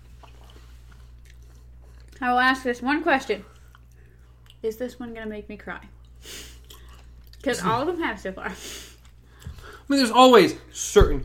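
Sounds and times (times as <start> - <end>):
steady low hum: 0.0 - 11.2
chewing food: 0.1 - 2.2, 3.5 - 4.6, 5.8 - 7.5
speech: 2.2 - 3.5, 4.6 - 6.4, 7.4 - 8.8, 9.9 - 11.2.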